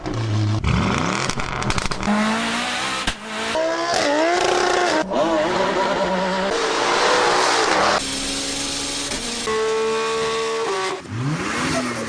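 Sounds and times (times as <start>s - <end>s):
petrol car engines revving and accelerating in Australia: 0.0s - 12.0s.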